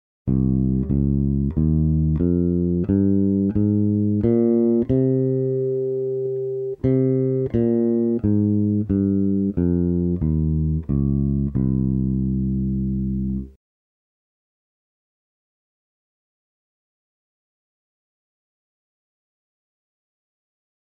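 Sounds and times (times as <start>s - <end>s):
Phrygian bass line: 0.3s - 13.6s.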